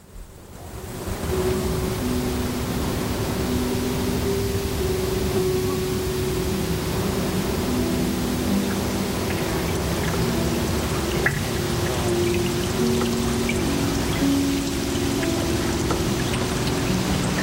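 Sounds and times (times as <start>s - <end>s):
steady rain falling: 0.0s - 17.4s
water drips: 7.7s - 17.4s.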